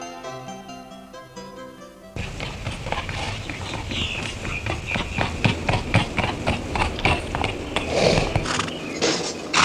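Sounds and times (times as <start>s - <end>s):
continuous rumbling noise: 2.2s - 9.6s
horse hooves clip-clopping: 2.2s - 9.6s.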